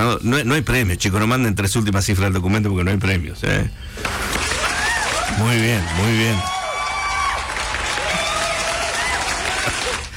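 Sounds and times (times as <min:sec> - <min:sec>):
speech: 0:00.0 - 0:04.4, 0:05.4 - 0:06.6
large crowd applauding: 0:04.3 - 0:10.1
faint cheering: 0:04.5 - 0:10.1.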